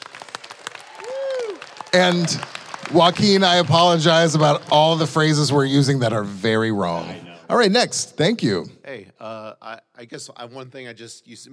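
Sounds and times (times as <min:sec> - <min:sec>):
crowd applause: 0:00.0 - 0:05.7
speech: 0:01.9 - 0:11.5.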